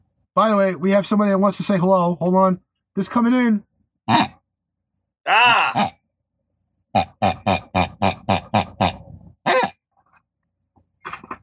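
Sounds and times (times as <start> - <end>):
speech: 0.4 - 4.3
pig grunting loudly: 4.1 - 4.4, 5.5 - 6.0, 7.0 - 9.8.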